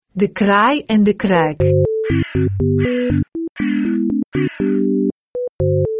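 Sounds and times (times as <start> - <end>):
speech: 0.2 - 5.8
crow cawing: 2.0 - 4.9.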